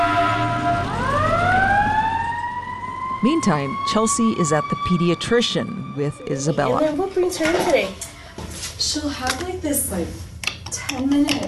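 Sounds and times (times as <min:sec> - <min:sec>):
fire truck siren wailing: 0:00.0 - 0:07.6
low rumble of traffic: 0:00.0 - 0:11.4
speech: 0:03.2 - 0:08.1, 0:08.8 - 0:11.4.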